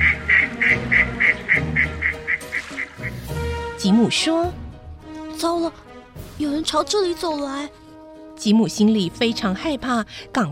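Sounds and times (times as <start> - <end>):
wild ducks circling and calling over a marsh: 0.0 - 3.3
speech: 3.8 - 4.6, 5.4 - 5.8, 6.4 - 7.8, 8.4 - 10.5.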